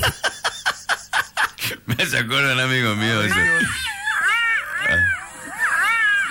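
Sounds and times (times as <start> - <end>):
laughter: 0.0 - 2.1
speech: 2.0 - 3.9
fox screaming: 3.2 - 6.2.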